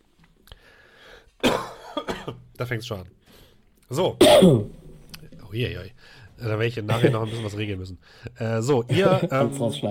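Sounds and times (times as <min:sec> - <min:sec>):
person with a cold coughing: 0:01.4 - 0:02.4, 0:04.2 - 0:04.8
speech: 0:02.3 - 0:03.2, 0:03.9 - 0:04.8, 0:05.5 - 0:09.8
laughter: 0:06.9 - 0:07.6, 0:08.8 - 0:09.8.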